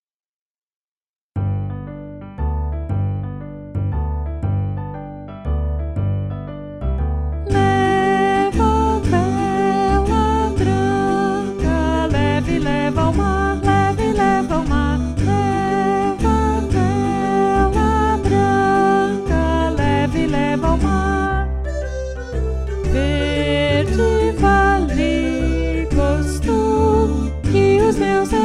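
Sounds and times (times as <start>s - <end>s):
baritone playing: 1.4s - 28.4s.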